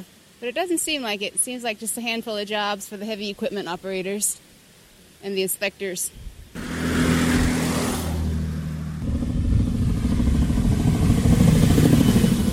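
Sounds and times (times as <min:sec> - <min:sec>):
speech: 0:00.0 - 0:04.5, 0:05.2 - 0:06.3
heavy diesel truck driving past: 0:06.6 - 0:12.5.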